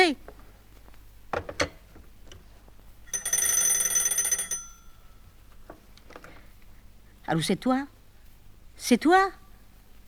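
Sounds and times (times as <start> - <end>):
telephone ringing with an electric bell trill: 3.1 - 5.3
speech: 7.3 - 8.0, 8.8 - 9.4.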